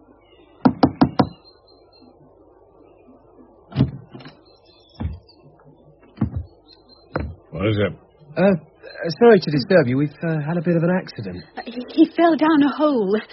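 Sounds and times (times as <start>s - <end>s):
sharp knocks on a wooden door: 0.6s - 1.4s, 5.0s - 5.2s, 6.2s - 6.5s, 7.2s - 7.5s
speech: 7.6s - 13.3s.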